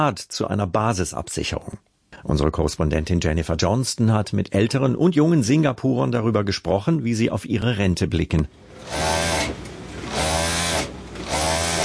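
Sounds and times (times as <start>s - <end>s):
speech: 0.0s - 9.6s
sewing machine whirring in an alterations tailor shop in a covered market in Singapore: 8.7s - 11.8s.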